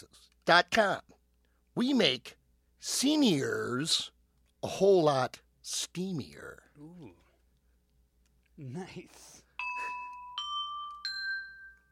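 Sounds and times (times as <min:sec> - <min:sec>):
speech: 0:00.0 - 0:01.1, 0:01.8 - 0:07.2, 0:08.6 - 0:09.3
bell dings: 0:09.6 - 0:11.8.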